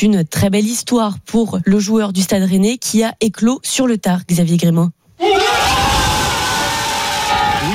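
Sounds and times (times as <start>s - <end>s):
speech: 0.0s - 5.8s
football teammates shouting and cheering in celebration: 5.2s - 7.7s.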